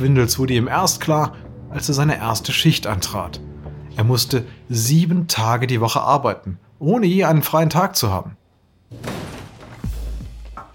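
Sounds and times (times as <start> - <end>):
speech: 0.0 - 9.1
main entrance doors bursting open: 8.9 - 10.7.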